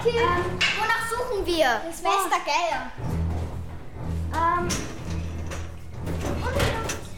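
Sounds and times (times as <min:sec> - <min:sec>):
speech: 0:00.0 - 0:03.2, 0:04.4 - 0:05.2
metal locker door creaking and scraping open in a caretaker's office: 0:04.6 - 0:07.1.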